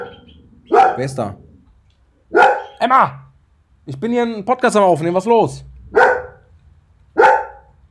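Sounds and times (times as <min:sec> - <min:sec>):
dog barking: 0:00.0 - 0:01.5, 0:02.3 - 0:02.8, 0:05.9 - 0:06.5, 0:07.1 - 0:07.8
speech: 0:01.0 - 0:01.4, 0:02.8 - 0:03.2, 0:03.9 - 0:05.7.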